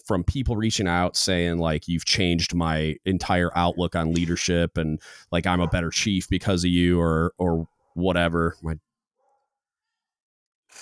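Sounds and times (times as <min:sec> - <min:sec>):
speech: 0:00.1 - 0:08.9
pet dogs barking: 0:05.5 - 0:06.1.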